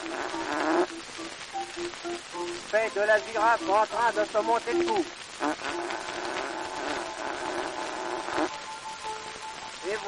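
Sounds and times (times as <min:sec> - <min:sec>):
imitated fart of a labouring elephant: 0:00.0 - 0:01.0, 0:05.4 - 0:08.6
speech: 0:02.7 - 0:06.4.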